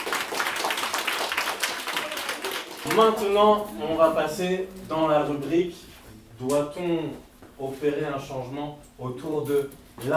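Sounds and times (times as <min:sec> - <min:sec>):
audience applauding debate participants: 0:00.0 - 0:03.1
speech: 0:02.8 - 0:10.1.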